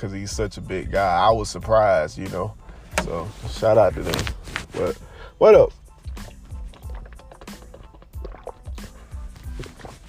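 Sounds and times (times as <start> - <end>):
speech: 0.0 - 5.8
person gulping water: 5.8 - 10.0.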